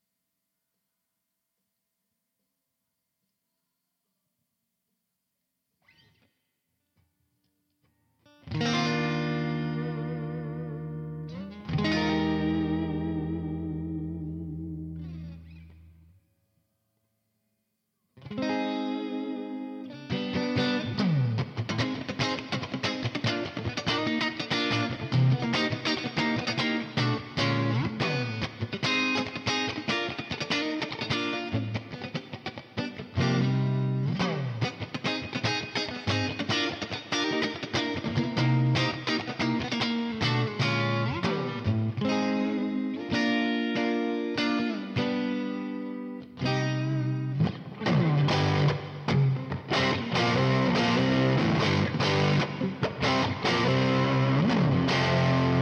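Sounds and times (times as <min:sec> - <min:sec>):
electric guitar rhythm multitrack: 0:07.9 - 0:16.2, 0:18.2 - 0:55.6.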